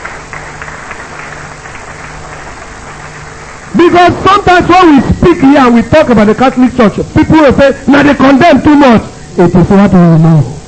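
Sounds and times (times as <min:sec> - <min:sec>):
crowd clapping: 0:00.0 - 0:04.2
speech: 0:03.8 - 0:10.6.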